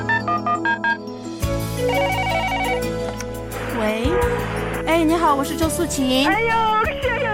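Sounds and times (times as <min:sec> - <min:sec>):
telephone ringing with short bright electronic tones: 0:00.0 - 0:01.2, 0:01.8 - 0:03.1
sustained music: 0:00.0 - 0:07.3
speech: 0:05.0 - 0:07.2.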